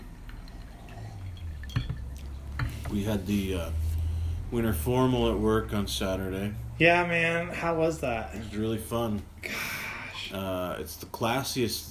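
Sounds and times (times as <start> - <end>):
low hum: 0.0 - 11.8
glasses clinking in a holiday toast: 1.0 - 2.8
speech: 2.9 - 3.8, 4.5 - 9.7, 10.3 - 11.8.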